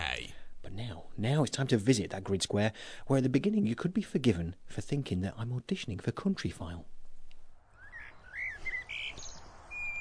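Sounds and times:
soft steady outdoor hiss: 0.0s - 9.9s
speech: 0.7s - 7.0s
swallows twittering by water: 7.7s - 9.9s.

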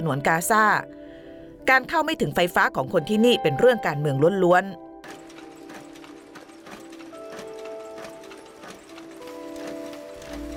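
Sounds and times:
speech: 0.0s - 1.0s, 1.6s - 5.2s
printing press machinery clacking in a print shop in Gaza: 5.0s - 10.5s
printing press motor hum: 5.0s - 10.5s.

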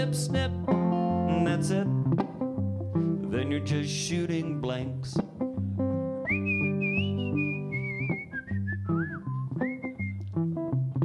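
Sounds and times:
speech: 0.0s - 0.8s, 1.4s - 2.4s, 3.5s - 5.4s
instrumental backing with a low bass line: 0.0s - 11.0s
person whistling a wavering melody: 6.2s - 10.3s.

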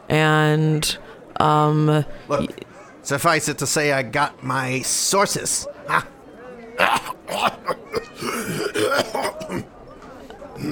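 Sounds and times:
speech: 0.1s - 6.1s
man clearing throat: 6.8s - 9.7s
man coughing: 6.8s - 9.7s.

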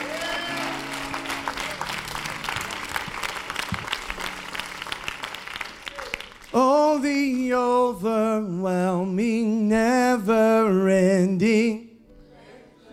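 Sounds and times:
large audience clapping enthusiastically: 0.0s - 7.4s
speech: 6.5s - 11.8s.

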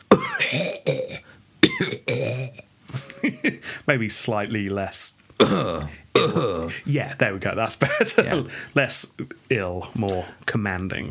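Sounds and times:
voice performing slow-motion throat clearing: 0.1s - 2.7s, 5.4s - 6.7s
laughter: 2.9s - 3.7s, 7.8s - 8.7s
speech: 3.9s - 11.0s.

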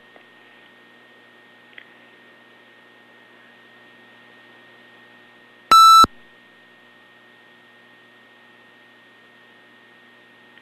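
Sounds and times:
quiet hum: 0.0s - 10.6s
short electronic beep: 5.7s - 6.1s.

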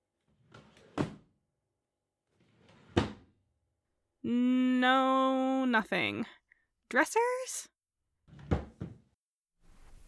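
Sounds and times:
wooden desk drawers sliding and shutting: 0.3s - 1.3s, 2.4s - 3.4s, 9.7s - 10.0s
speech: 4.2s - 7.7s.

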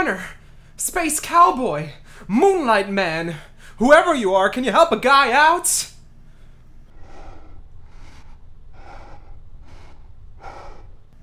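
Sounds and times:
speech: 0.0s - 5.9s
low rumbling hum: 0.1s - 3.8s, 5.9s - 11.2s
heavy rasping breathing: 6.2s - 11.2s.

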